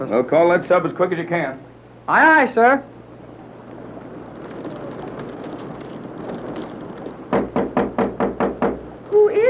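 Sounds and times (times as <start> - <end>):
speech: 0.0 - 3.0
low rumble: 0.0 - 9.4
quick firm knocks on a door: 7.3 - 8.9.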